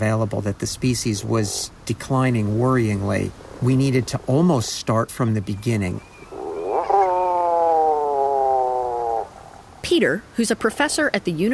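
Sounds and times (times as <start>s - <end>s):
speech: 0.0s - 6.1s, 9.9s - 11.5s
Tufted Puffin giving a long low groaning moan: 6.3s - 9.8s.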